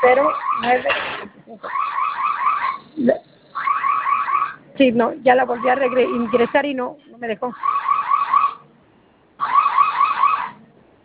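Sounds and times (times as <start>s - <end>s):
electronic alarm warbling over a phone line: 0.0s - 1.0s, 1.6s - 6.7s, 7.5s - 8.7s, 9.4s - 10.6s
speech: 0.1s - 1.9s, 4.8s - 7.8s.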